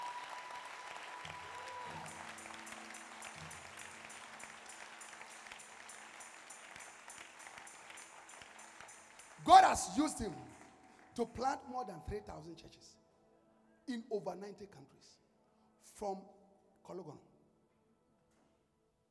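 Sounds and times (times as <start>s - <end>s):
audience clapping at a sermon: 0.0s - 11.6s
speech: 9.6s - 10.5s, 11.2s - 13.0s, 13.9s - 15.2s, 16.0s - 17.3s.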